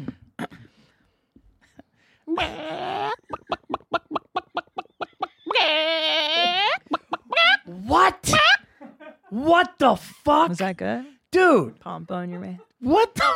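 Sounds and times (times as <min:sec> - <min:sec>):
speech: 0:02.3 - 0:02.9, 0:09.5 - 0:13.3
person imitating a chicken with squawking bawks and clucks: 0:02.3 - 0:08.6.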